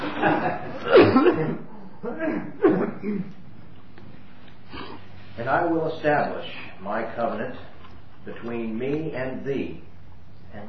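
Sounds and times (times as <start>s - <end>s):
speech: 0.2s - 3.4s, 5.4s - 9.9s
person coughing: 0.8s - 3.3s.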